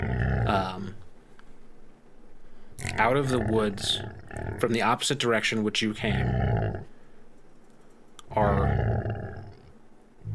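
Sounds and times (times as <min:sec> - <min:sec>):
dog growling: 0:00.0 - 0:01.0, 0:02.8 - 0:04.8, 0:06.1 - 0:06.9, 0:08.3 - 0:10.3
speech: 0:03.0 - 0:06.9, 0:08.3 - 0:08.8.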